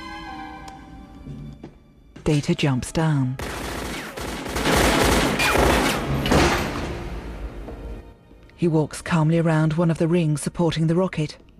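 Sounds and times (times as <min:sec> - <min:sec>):
speech: 0:02.3 - 0:03.4, 0:08.6 - 0:11.4
gunshots fired repeatedly by a woman: 0:03.4 - 0:07.1.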